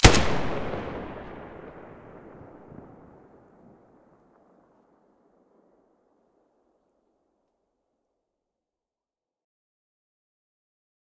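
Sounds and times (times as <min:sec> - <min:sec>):
Galil rifle muzzle gunshot: 0:00.0 - 0:03.2.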